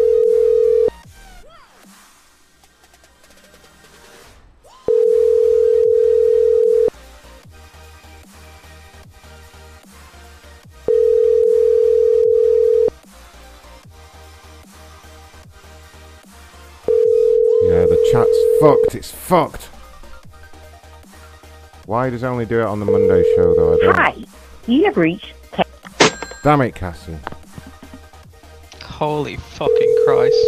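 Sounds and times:
telephone call tone from a phone being dialled: 0:00.0 - 0:00.9, 0:04.9 - 0:06.9, 0:10.9 - 0:12.9, 0:16.9 - 0:18.9, 0:22.9 - 0:24.0, 0:29.7 - 0:30.4
speech: 0:18.9 - 0:19.8, 0:21.9 - 0:25.4, 0:26.4 - 0:27.3, 0:29.0 - 0:30.4.

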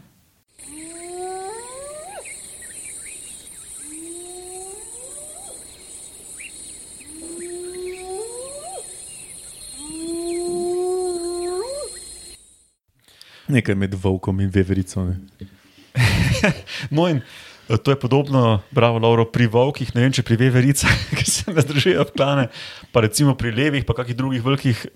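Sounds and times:
steady high-pitched insect drone: 0:00.5 - 0:12.8
rising whoop calls of hyenas from a rival clan: 0:00.6 - 0:12.3
speech: 0:13.5 - 0:15.6, 0:16.4 - 0:24.9
laughter: 0:16.0 - 0:16.7, 0:20.8 - 0:22.4.

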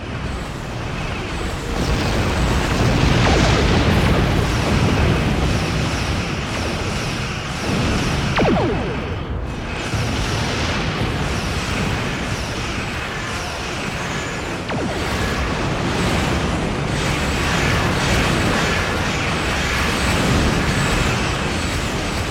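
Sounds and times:
video game space combat rumble: 0:00.0 - 0:22.3
video game spaceship booming explosions and blasts: 0:01.8 - 0:06.2, 0:07.6 - 0:11.2, 0:14.6 - 0:17.2.

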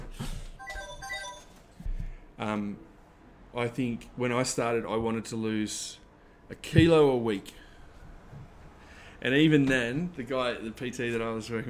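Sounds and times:
mobile phone ringtone with bright electronic tones: 0:00.6 - 0:01.7
speech: 0:02.4 - 0:02.9, 0:03.6 - 0:07.6, 0:09.2 - 0:11.6.

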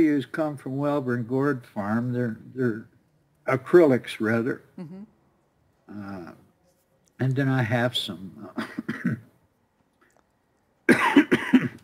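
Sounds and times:
speech: 0:00.0 - 0:02.9, 0:03.5 - 0:05.1, 0:05.9 - 0:06.4, 0:07.2 - 0:09.3
person coughing from a tickle in the throat: 0:08.6 - 0:09.2, 0:10.9 - 0:11.8.

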